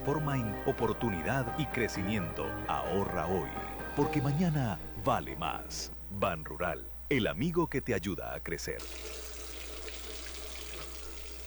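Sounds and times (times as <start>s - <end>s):
speech: 0.0s - 9.2s
water running from a tap while dishes are washed: 8.8s - 11.4s.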